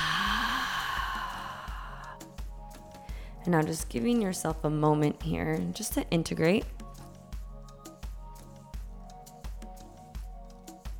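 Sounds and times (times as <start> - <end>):
long exhale releasing the breath during a breathwork session: 0.0 - 2.4
speech: 3.4 - 6.8.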